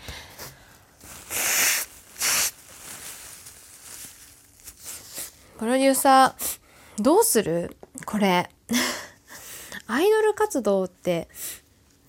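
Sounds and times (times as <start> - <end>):
person blowing nose: 1.1 - 2.6
speech: 5.6 - 8.9, 9.9 - 11.4.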